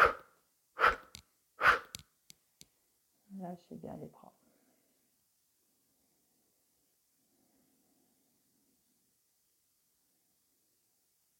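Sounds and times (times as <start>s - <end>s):
exhaling through the mouth during a guided breathing exercise: 0.8s - 2.0s
speech: 3.5s - 4.4s.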